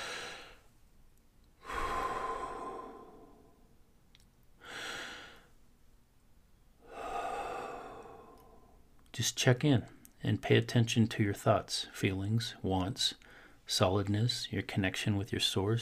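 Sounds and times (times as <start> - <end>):
slow deep breaths during a relaxation exercise: 0.0 - 0.8, 1.6 - 3.8, 4.6 - 5.6, 6.8 - 9.0, 13.2 - 13.7
speech: 9.2 - 15.8.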